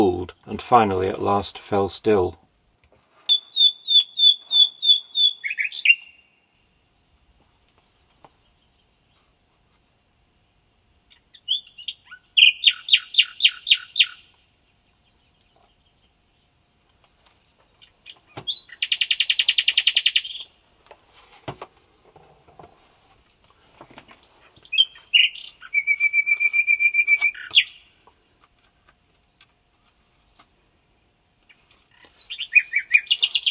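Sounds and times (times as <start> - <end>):
speech: 0.0 - 2.4
bird singing rapid buzzy trills and clear whistled notes in pine woods: 3.3 - 6.4, 11.1 - 14.3, 17.8 - 20.5, 24.5 - 27.9, 31.5 - 33.5.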